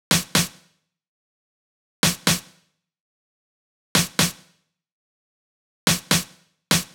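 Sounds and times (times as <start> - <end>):
big EDM drum loop with snare, future house: 0.1 - 0.6, 2.0 - 2.5, 4.0 - 4.5, 5.9 - 6.9.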